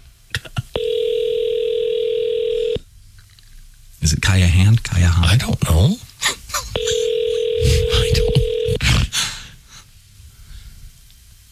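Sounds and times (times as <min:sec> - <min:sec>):
electronic ringback tone from a phone line calling a cell phone store: 0:00.8 - 0:02.8, 0:06.8 - 0:08.8
speech: 0:04.3 - 0:06.1.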